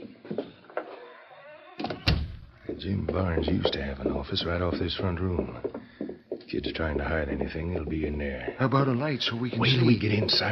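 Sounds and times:
unlocked door thumping as it swings open: 1.8s - 3.8s
speech: 2.7s - 5.8s, 6.5s - 10.5s.

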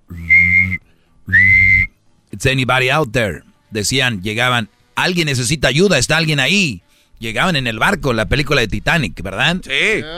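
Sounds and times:
loud shrill whistle blasts: 0.2s - 1.9s
speech: 2.4s - 10.1s.

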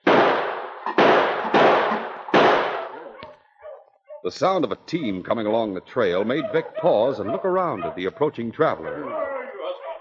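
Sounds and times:
six-shooter revolver shots at a tin can in the snow: 0.0s - 3.4s
speech: 4.2s - 9.3s.

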